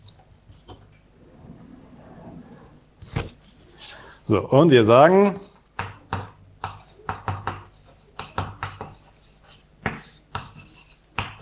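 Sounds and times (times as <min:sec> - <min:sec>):
speech: 0:04.3 - 0:05.5
handwriting strokes writing out a mathematical expression: 0:06.6 - 0:11.0.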